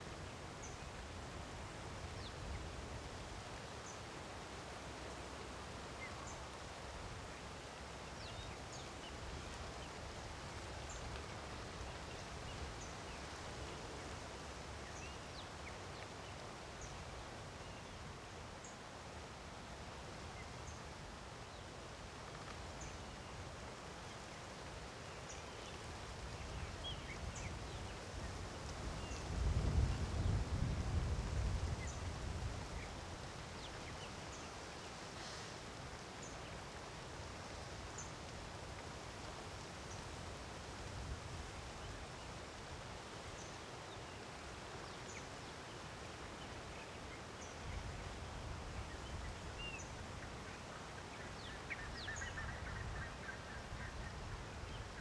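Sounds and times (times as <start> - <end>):
wind moving tree leaves: 0.0 - 54.9.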